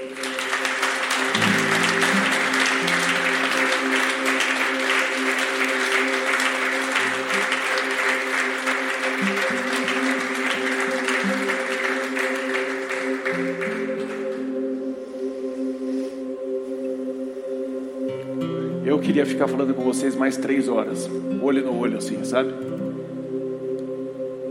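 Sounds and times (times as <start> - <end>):
audience clapping: 0.0 - 14.8
sustained keyboard chords: 0.0 - 24.4
speech: 19.1 - 23.0.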